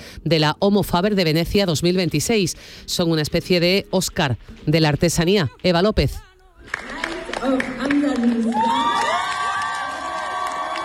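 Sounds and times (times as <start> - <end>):
speech: 0.2 - 8.4
large audience clapping: 6.6 - 10.8
large audience cheering and whooping: 8.1 - 10.8.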